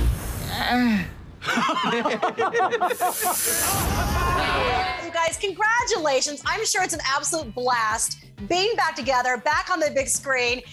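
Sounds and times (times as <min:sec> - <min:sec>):
speech: 0:00.7 - 0:10.7
burst of rhythmic laughter: 0:01.4 - 0:04.1
Texas rat snake hissing: 0:02.9 - 0:04.0.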